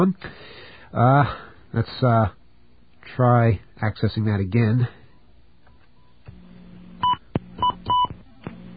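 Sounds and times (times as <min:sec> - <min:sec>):
speech: 0:00.0 - 0:02.4, 0:03.1 - 0:05.0
low hum: 0:00.0 - 0:08.7
touch-tone telephone dialing beeps: 0:07.0 - 0:08.1.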